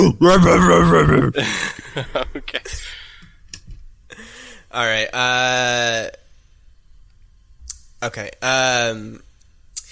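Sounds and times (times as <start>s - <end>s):
person imitating ape noises: 0.0s - 1.4s
speech: 0.0s - 3.0s, 4.7s - 6.2s, 8.0s - 9.3s.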